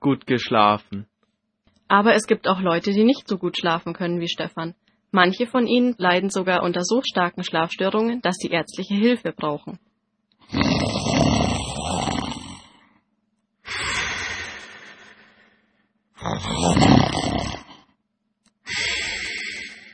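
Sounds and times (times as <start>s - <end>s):
speech: 0.0s - 1.1s, 1.9s - 9.9s
human snoring: 10.5s - 12.9s, 16.2s - 17.9s, 18.7s - 19.9s.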